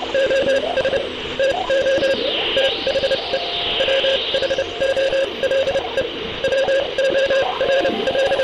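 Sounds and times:
radio hiss and crackle: 0.0s - 8.4s
Morse code beeps keyed over a noisy radio channel: 0.1s - 8.4s
wavering whistling sweeps: 2.0s - 5.4s.

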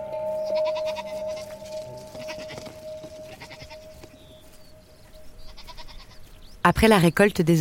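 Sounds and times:
herd of goats bleating: 0.1s - 4.3s, 5.5s - 6.3s
speech: 6.7s - 7.5s.

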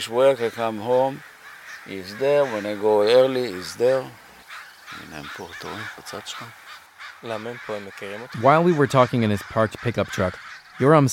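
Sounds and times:
speech: 0.0s - 4.2s, 4.9s - 6.6s, 7.2s - 11.1s
crows cawing in a tree across the street: 0.0s - 11.1s.

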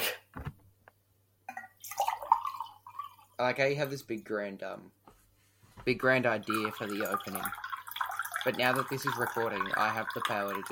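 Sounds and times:
water pouring into a mug: 1.5s - 3.4s, 6.0s - 10.7s
speech: 3.4s - 5.0s, 5.8s - 7.6s, 8.4s - 10.7s.

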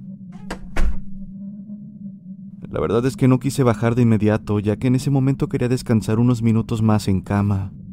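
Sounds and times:
front entrance door shutting with heavy low thud: 0.3s - 1.3s
front entrance door rattling latch click: 0.4s - 1.2s
speech: 2.7s - 7.8s.

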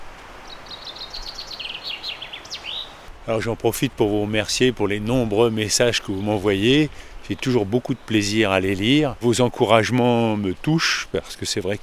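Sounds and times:
soft outdoor hiss: 0.0s - 11.8s
common chaffinch singing in the Fontainebleau forest: 0.4s - 3.5s, 4.4s - 11.8s
speech: 3.2s - 11.8s.

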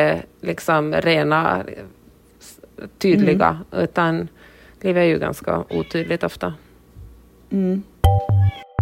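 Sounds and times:
speech: 0.0s - 2.0s, 2.8s - 6.6s, 7.5s - 8.6s
cat meowing: 5.6s - 6.3s, 8.3s - 8.7s.

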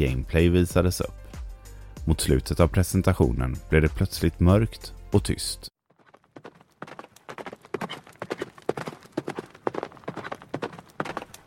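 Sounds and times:
speech: 0.0s - 1.2s, 2.1s - 5.7s
horse hooves galloping: 5.9s - 11.4s.

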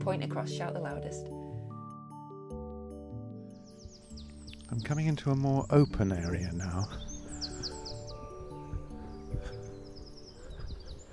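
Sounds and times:
speech: 0.0s - 1.4s, 4.7s - 7.1s
soft outdoor background: 0.0s - 11.1s
dawn chorus of several birds singing: 3.4s - 11.1s.

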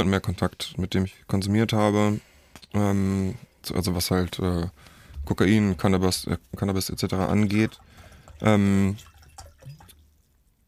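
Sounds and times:
speech: 0.0s - 9.1s
water being poured or dripping: 6.8s - 10.3s.

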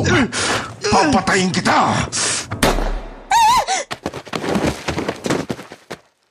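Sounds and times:
speech: 0.1s - 2.7s
gunshot from a gun fought over in a struggle: 2.6s - 3.2s
frantic scuffle: 3.3s - 6.2s.

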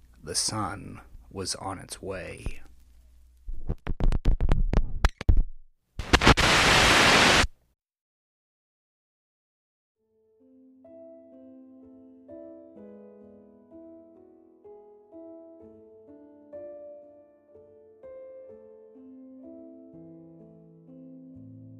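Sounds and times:
speech: 0.2s - 2.7s
radio clicks and crackles while tuning: 3.7s - 5.4s, 6.0s - 7.5s
radio static hiss: 6.0s - 7.5s.

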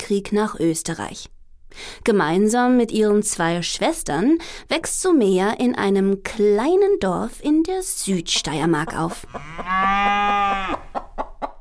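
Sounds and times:
speech: 0.1s - 10.8s
farm fowl clucking: 8.4s - 11.6s
cow mooing: 9.3s - 10.9s.

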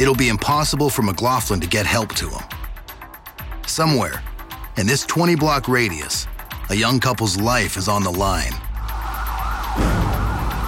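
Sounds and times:
speech: 0.0s - 2.6s, 3.7s - 8.6s
police siren wailing: 8.4s - 10.6s.

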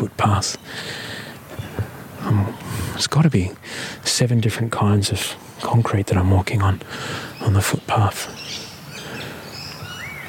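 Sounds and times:
speech: 0.0s - 1.1s, 2.2s - 8.6s
steady outdoor hum: 0.0s - 10.2s
currawong and rainbow lorikeet calls: 0.3s - 3.1s, 6.8s - 10.2s.

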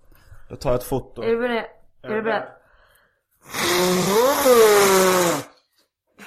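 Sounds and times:
speech: 0.5s - 2.6s, 3.4s - 5.5s
person blowing nose hard: 3.4s - 5.7s.

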